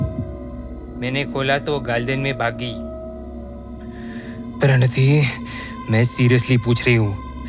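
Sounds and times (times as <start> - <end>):
fast heartbeat: 0.0 - 0.5
faint hum: 0.0 - 7.4
speech: 1.0 - 2.9, 4.6 - 7.4.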